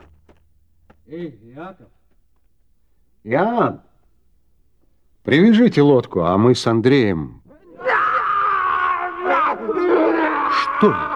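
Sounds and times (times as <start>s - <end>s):
speech: 1.1s - 2.0s, 3.2s - 3.9s, 5.2s - 7.4s, 10.6s - 11.1s
two people screaming: 7.6s - 11.1s.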